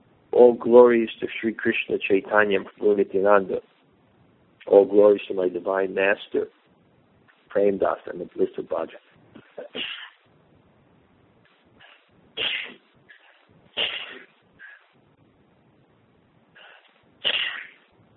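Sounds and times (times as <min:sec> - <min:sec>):
speech: 0:00.4 - 0:03.7, 0:04.7 - 0:06.6, 0:07.6 - 0:10.0
person having a sneezing attack: 0:09.6 - 0:10.2, 0:11.8 - 0:14.8, 0:16.6 - 0:17.9.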